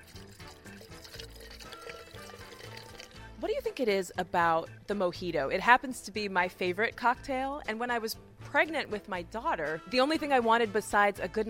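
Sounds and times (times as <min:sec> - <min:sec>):
sparkling water pouring into a glass: 0:00.0 - 0:03.3
speech: 0:03.8 - 0:11.4.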